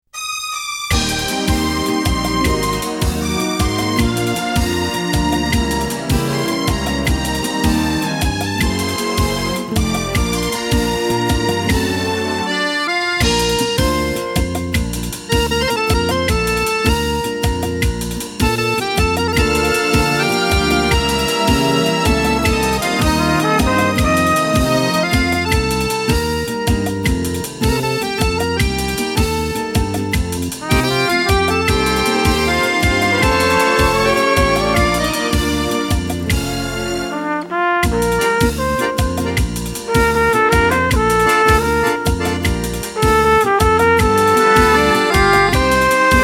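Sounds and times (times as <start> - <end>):
trumpet: 0.2 - 46.2
accordion: 0.5 - 46.2.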